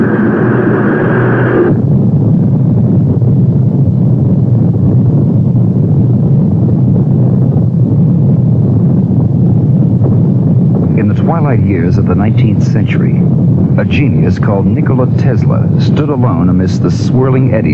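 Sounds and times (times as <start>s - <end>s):
rocket main engines roaring at launch: 0.0s - 17.7s
speech: 12.1s - 17.7s.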